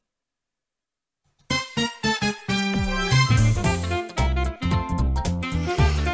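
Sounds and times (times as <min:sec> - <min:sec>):
bright bouncy instrumental video game music with full band: 0:01.5 - 0:06.1.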